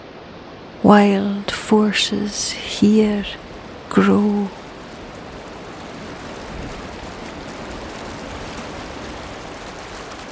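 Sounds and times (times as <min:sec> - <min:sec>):
rushing white water: 0:00.0 - 0:10.3
speech: 0:00.8 - 0:04.6.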